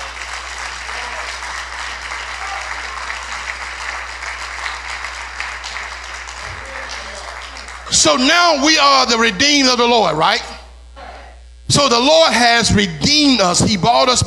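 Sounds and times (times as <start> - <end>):
audience clapping hands: 0.0 - 8.2
speech: 8.0 - 10.5, 11.7 - 14.2.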